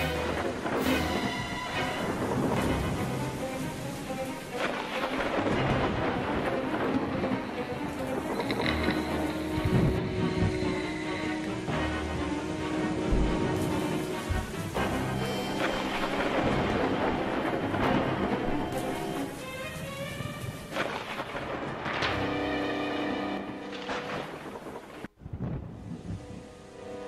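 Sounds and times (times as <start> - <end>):
thunder rumbling in a thunderstorm: 0.1 - 27.0.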